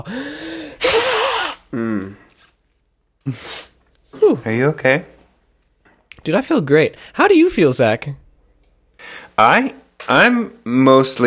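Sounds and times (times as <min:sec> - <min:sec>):
speech: 0:00.0 - 0:00.5, 0:01.7 - 0:02.2, 0:03.2 - 0:03.7, 0:04.3 - 0:05.1, 0:06.2 - 0:08.2, 0:09.0 - 0:11.2
person blowing nose: 0:00.5 - 0:02.6, 0:03.2 - 0:03.8.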